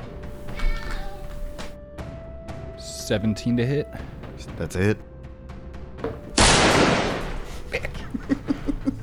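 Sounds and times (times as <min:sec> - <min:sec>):
speech: 0:03.1 - 0:05.1
gunshot sound effect: 0:06.4 - 0:07.6
laughter: 0:07.5 - 0:09.0.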